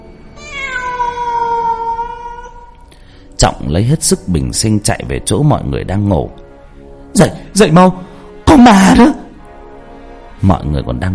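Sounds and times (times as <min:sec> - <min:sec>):
cat-like meow from a creature described as a newborn child with long limbs: 0:00.4 - 0:02.9
speech: 0:03.4 - 0:06.4, 0:07.2 - 0:09.2, 0:10.4 - 0:11.1.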